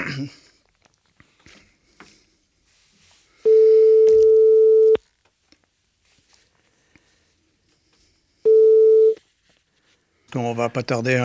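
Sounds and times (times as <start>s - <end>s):
speech: 0.2s - 0.4s, 10.4s - 11.2s
telephone busy signal tones during a call attempt: 3.4s - 5.0s, 8.4s - 9.2s.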